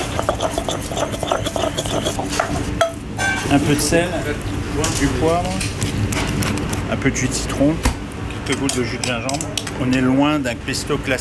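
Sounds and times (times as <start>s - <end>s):
pestle tapping against the mortar bowl: 0.0s - 3.0s
pestle scraping grilled ingredients with confit garlic and oil in a mortar: 0.0s - 6.9s
speech: 3.5s - 5.8s, 6.9s - 11.1s.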